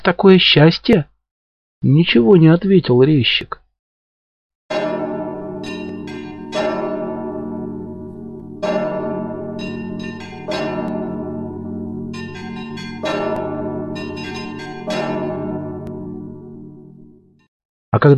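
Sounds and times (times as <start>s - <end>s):
speech: 0.0s - 1.1s, 1.8s - 3.6s, 18.0s - 18.1s
church bell tolling in slow steady strokes: 4.7s - 17.5s.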